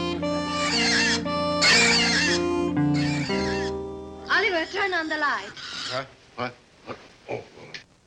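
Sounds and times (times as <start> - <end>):
pig squealing and grunting in a barn: 0.6 - 3.8, 4.4 - 6.1
speech: 5.1 - 6.6.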